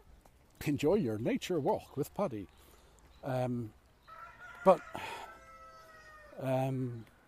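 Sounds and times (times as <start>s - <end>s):
speech: 0.6s - 3.8s, 4.6s - 5.1s, 6.4s - 7.1s
rooster crowing outdoors: 4.0s - 6.5s.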